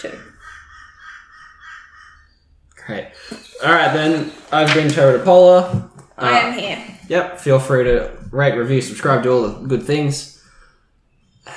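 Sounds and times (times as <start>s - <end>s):
speech: 0.0s - 0.3s, 2.9s - 10.4s
crow cawing: 0.1s - 2.4s.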